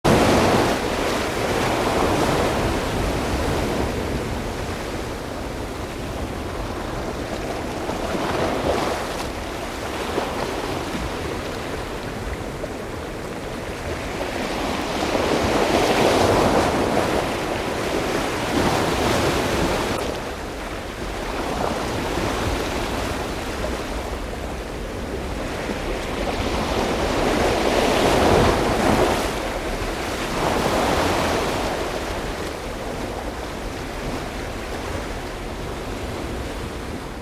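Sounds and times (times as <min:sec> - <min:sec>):
water: 0:00.0 - 0:37.2.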